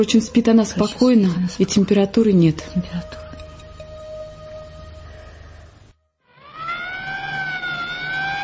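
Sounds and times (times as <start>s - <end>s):
speech: 0.0s - 3.2s
ambulance siren wailing as the ambulance pulls up to a house: 6.2s - 8.4s.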